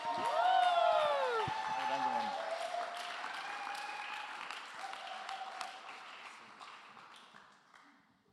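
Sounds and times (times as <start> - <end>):
whoops and cheering voices: 0.0 - 5.7
crowd applauding with dense continuous clapping: 0.0 - 8.0.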